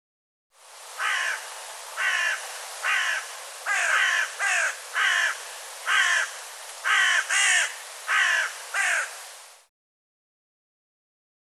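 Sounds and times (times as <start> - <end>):
bird harsh cawing calls: 1.0 - 9.2.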